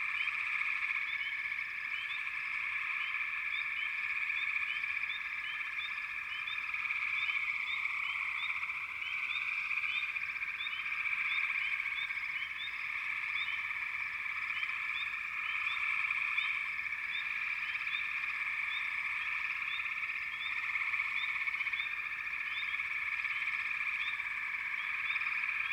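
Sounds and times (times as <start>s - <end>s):
frogs calling in chorus: 0.0s - 25.7s.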